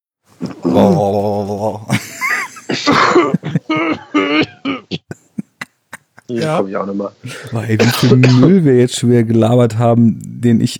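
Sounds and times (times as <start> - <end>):
speech: 0.6 - 2.1, 2.8 - 5.0, 6.3 - 10.7
laughter: 1.4 - 4.0, 5.0 - 6.7
person clearing throat: 1.8 - 5.2, 6.3 - 6.6, 7.4 - 8.6.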